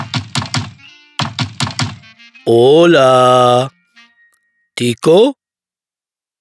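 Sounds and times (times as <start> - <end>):
sharp knocks on a door: 0.0 - 2.1
speech: 2.4 - 3.8, 4.8 - 5.4.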